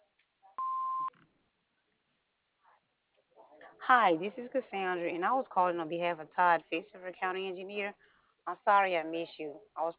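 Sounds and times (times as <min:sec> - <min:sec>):
answering machine electronic beep: 0:00.6 - 0:01.1
speech: 0:03.9 - 0:09.9.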